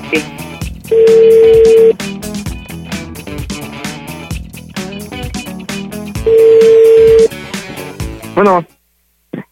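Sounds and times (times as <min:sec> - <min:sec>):
loud busy music: 0:00.0 - 0:08.4
speech: 0:00.1 - 0:02.1, 0:08.4 - 0:08.8
telephone ringback tone: 0:00.9 - 0:01.9, 0:06.3 - 0:07.3.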